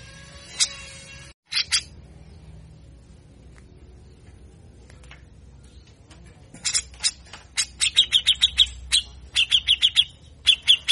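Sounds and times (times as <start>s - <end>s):
grey-cheeked bulbul singing sharp notes and buzzy chirps: 0.0s - 2.5s, 6.6s - 10.9s.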